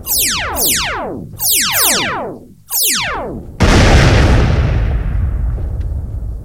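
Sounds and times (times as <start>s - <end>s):
descending laser-like zaps from a sci-fi blaster: 0.0s - 3.6s
loud roaring spaceship explosion: 0.0s - 5.4s.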